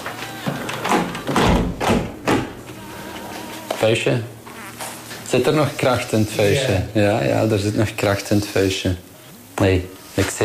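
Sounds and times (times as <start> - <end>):
window frame and pane thumping as the window is shut: 0.6 - 2.6
speech: 3.8 - 4.4, 5.3 - 10.4.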